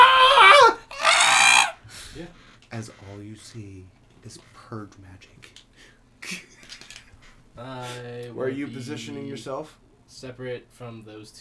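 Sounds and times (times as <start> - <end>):
shrill screams: 0.0 - 2.2
speech: 2.7 - 5.6, 6.3 - 6.5, 7.6 - 11.3.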